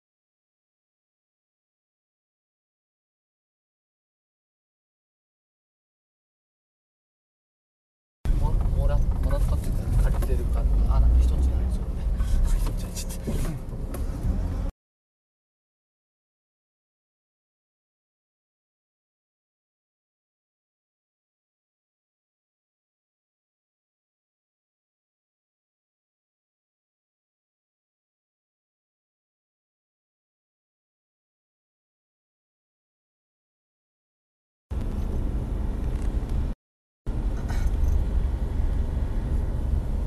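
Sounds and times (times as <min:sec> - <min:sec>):
people talking inside a car: 0:08.3 - 0:13.6
car driving heard from inside the cabin: 0:08.3 - 0:14.7, 0:34.8 - 0:40.0.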